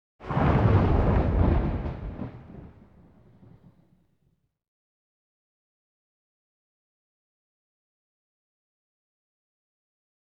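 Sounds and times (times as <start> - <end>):
single thunder clap: 0.2 - 3.8.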